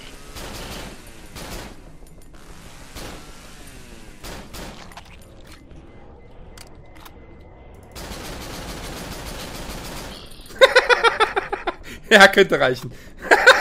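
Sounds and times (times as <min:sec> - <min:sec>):
gunfire in a video game boss fight: 0:00.2 - 0:05.2, 0:08.0 - 0:10.4
laughter: 0:10.5 - 0:11.8, 0:13.2 - 0:13.5
speech: 0:12.1 - 0:13.2.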